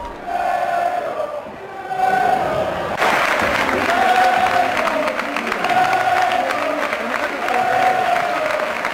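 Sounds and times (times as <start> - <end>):
large football stadium crowd roaring and cheering for a goalscorer: 0.0 - 8.9
large football stadium crowd applauding a player: 2.9 - 8.9.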